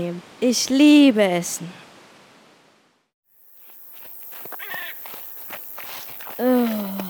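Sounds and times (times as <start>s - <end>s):
speech: 0.0s - 1.8s
footsteps of people hiking uphill to a lake: 3.6s - 7.0s
person sighing: 6.4s - 7.0s.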